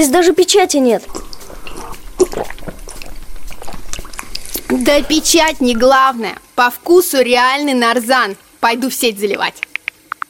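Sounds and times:
speech: 0.0s - 1.3s, 4.7s - 9.7s
water pouring from a tap fitted with a filter-mineralizer: 1.1s - 6.3s.

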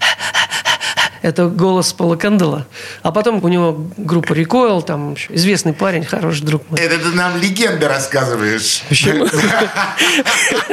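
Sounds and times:
person imitating heavy rhythmic breathing from a song: 0.0s - 1.2s
speech: 1.2s - 10.7s
laughter: 8.8s - 10.7s.

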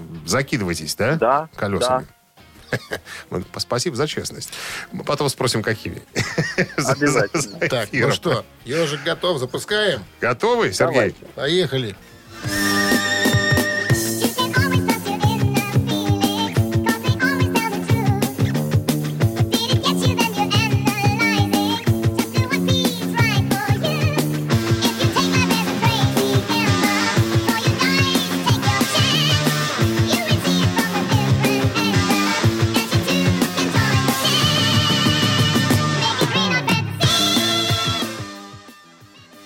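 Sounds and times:
speech: 0.3s - 12.6s
laughter: 2.6s - 3.2s, 6.2s - 9.4s
rock song with full band and steady driving drums: 12.5s - 38.4s.

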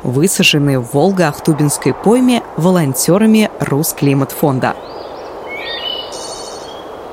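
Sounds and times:
speech: 0.1s - 5.8s
steady airy hiss: 1.0s - 7.1s
songbird whistles and chirps in a forest: 5.5s - 6.8s.

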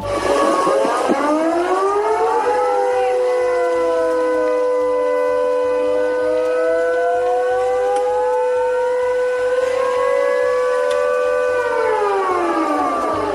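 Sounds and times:
civil defense air raid siren wailing: 0.0s - 13.3s.

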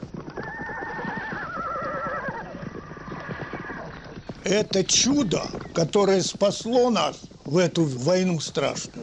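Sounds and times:
horse hooves clopping: 0.0s - 9.0s
horse neighing: 0.3s - 6.0s
speech: 4.4s - 9.0s.

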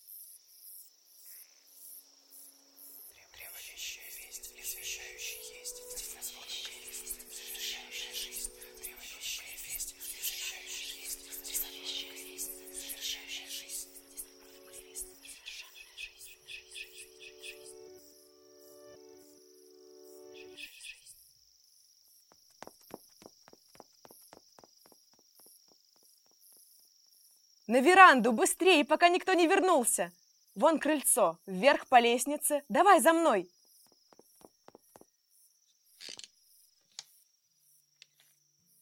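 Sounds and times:
faint chirping: 0.0s - 27.4s
wind rustling through tall pine trees: 1.7s - 15.4s
speech: 27.7s - 33.6s.

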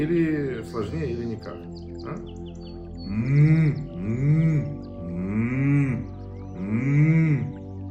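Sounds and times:
speech: 0.0s - 4.8s
closed-mouth humming voice exercise: 1.8s - 7.8s.

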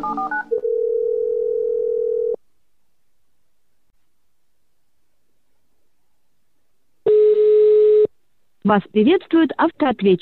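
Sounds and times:
telephone dial tone: 0.3s - 2.4s, 7.1s - 8.1s
speech: 8.6s - 10.2s.

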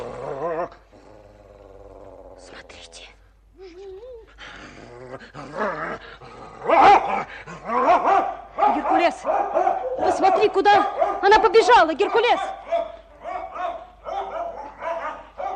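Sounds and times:
dog growling: 0.0s - 3.2s, 4.2s - 8.2s
dog barking and snarling: 5.1s - 15.5s
speech: 10.4s - 12.5s.

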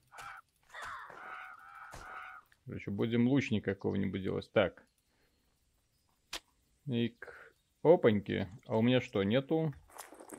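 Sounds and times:
crows cawing: 0.0s - 2.6s
speech: 2.7s - 4.9s, 6.9s - 9.8s.

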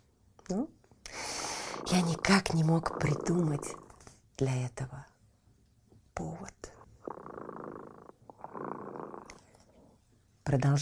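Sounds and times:
speech: 0.5s - 0.8s, 1.9s - 3.8s, 4.4s - 5.1s, 6.2s - 6.7s, 10.5s - 10.8s
cat purring: 1.1s - 4.2s, 6.6s - 10.0s.

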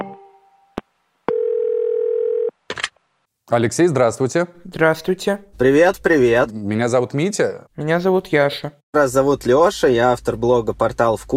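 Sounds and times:
loud steady telephone dial tone: 1.3s - 2.6s
speech: 3.5s - 11.3s.

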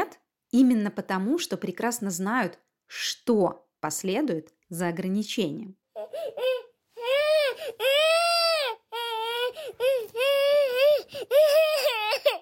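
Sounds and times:
speech: 0.5s - 6.5s
young child crying and whining: 5.9s - 12.4s.

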